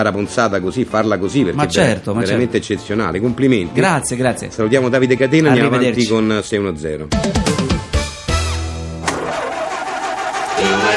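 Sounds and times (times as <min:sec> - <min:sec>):
speech: 0:00.0 - 0:07.8
car engine sputtering and stalling: 0:09.0 - 0:10.9.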